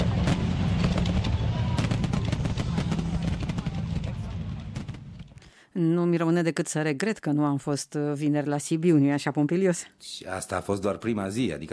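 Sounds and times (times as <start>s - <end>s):
faint crowd noise: 0.0s - 5.0s
deep steady rumble: 0.0s - 5.4s
fireworks bursting and crackling: 0.0s - 5.4s
speech: 5.8s - 11.7s.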